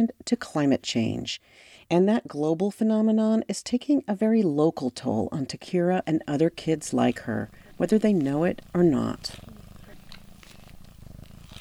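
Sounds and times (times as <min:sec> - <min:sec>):
speech: 0:00.0 - 0:09.5
cat purring while being held and cuddled: 0:05.5 - 0:11.5.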